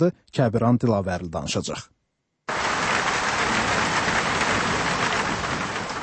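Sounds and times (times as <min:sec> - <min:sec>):
speech: 0:00.0 - 0:02.6
heavy rain pouring down in Baku: 0:02.5 - 0:06.0.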